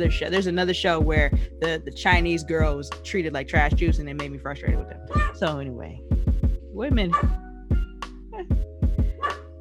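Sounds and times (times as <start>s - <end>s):
speech: 0.0s - 6.1s, 6.8s - 7.4s
dog giving lazy low woofs: 5.1s - 5.4s, 7.1s - 7.4s, 9.2s - 9.4s.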